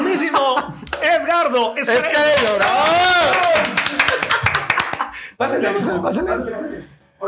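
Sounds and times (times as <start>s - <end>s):
crowd cheering with whoops: 1.2s - 5.1s
speech: 1.4s - 3.9s, 5.4s - 7.2s
audience applause welcoming a guest: 2.0s - 5.1s.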